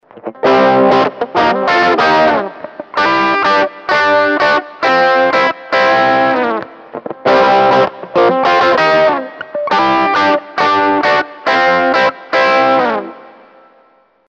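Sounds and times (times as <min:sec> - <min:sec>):
guitar through vintage OD-1 overdrive: 0:00.0 - 0:14.2.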